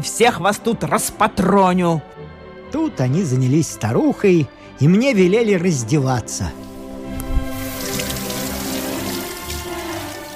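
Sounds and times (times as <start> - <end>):
speech: 0.0 - 6.7
hot water running from a tap into a filling bathtub: 6.6 - 10.3.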